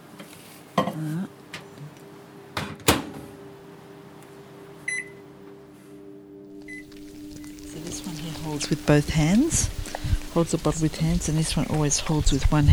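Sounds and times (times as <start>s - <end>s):
speech: 1.0s - 1.4s, 8.4s - 12.7s
microwave oven humming while defrosting a bottle: 1.1s - 12.4s.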